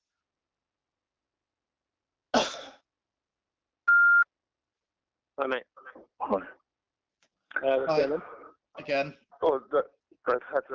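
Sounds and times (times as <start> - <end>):
short rough cough-like burst: 2.4 - 2.8
speech: 5.4 - 6.6, 7.6 - 10.7.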